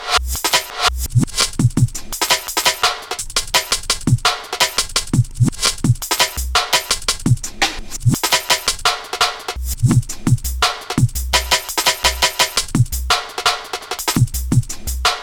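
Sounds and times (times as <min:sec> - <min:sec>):
sliced beat: 0:00.0 - 0:15.2.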